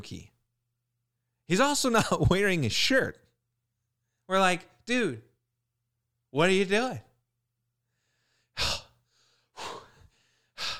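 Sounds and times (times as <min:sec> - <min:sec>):
speech: 0:00.0 - 0:00.3, 0:01.5 - 0:03.2, 0:04.3 - 0:05.3, 0:06.3 - 0:07.1
person imitating heavy stressed breathing: 0:07.9 - 0:10.7.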